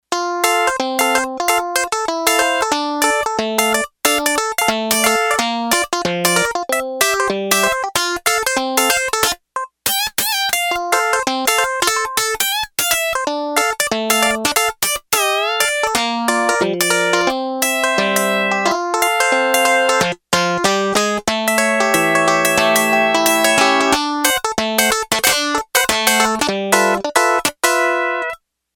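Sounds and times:
finger-picked synth tone on Yamaha TX802: 0.2 - 28.4.

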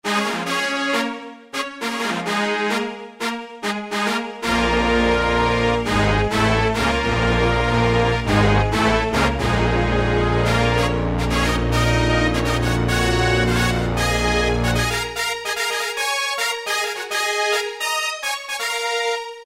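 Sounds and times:
brass and strings synth patch: 0.0 - 19.4.

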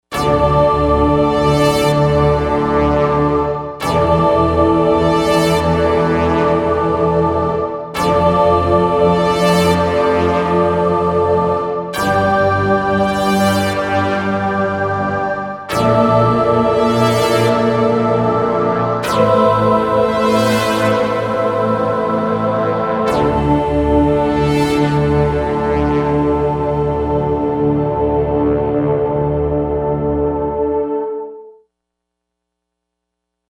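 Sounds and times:
brass choir on a digital synthesizer: 0.1 - 31.6.

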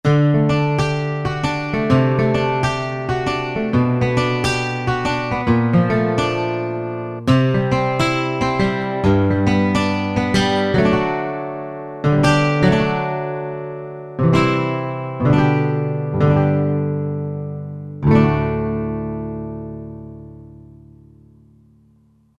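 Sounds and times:
acoustic guitars playing country music: 0.0 - 22.3.

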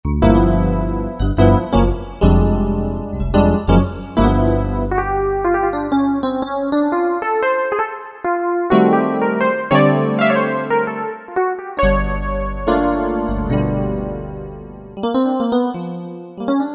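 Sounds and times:
electric piano on a Korg M1: 0.1 - 16.7.

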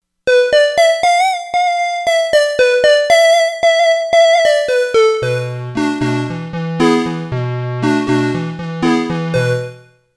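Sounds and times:
warm synth lead: 0.3 - 9.8.

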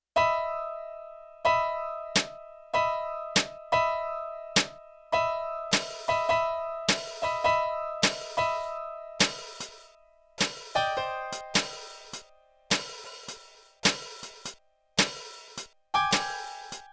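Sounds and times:
Yamaha TX16W piano in a jazz performance: 0.1 - 14.6, 15.9 - 16.9
Yamaha TX16W drums in a jazz performance: 2.2 - 2.4, 5.7 - 16.9.

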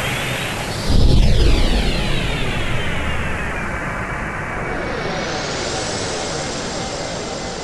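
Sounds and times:
jet preset on an E-mu Proteus-1 sound module: 0.2 - 7.6.

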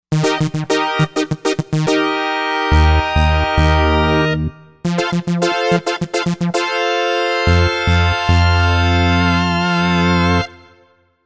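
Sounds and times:
pulse organ: 0.1 - 10.6.

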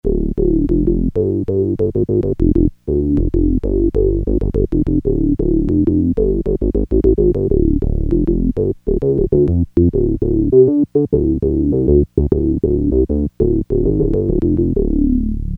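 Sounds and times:
synth bass: 0.0 - 15.5.

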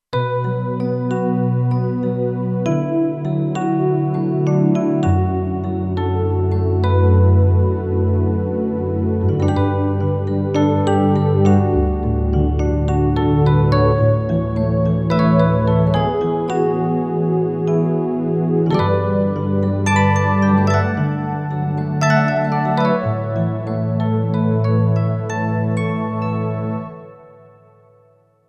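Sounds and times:
ballad comping on Kurzweil K2500X keyboard: 0.1 - 28.2.

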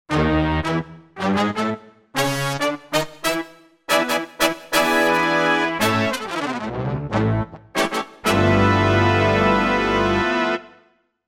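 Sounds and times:
synthesized brass section: 0.1 - 10.9.

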